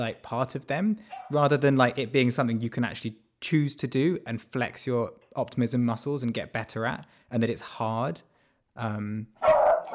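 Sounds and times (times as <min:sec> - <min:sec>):
speech: 0:00.0 - 0:09.5
pet dog barking: 0:01.1 - 0:01.4, 0:09.4 - 0:09.9.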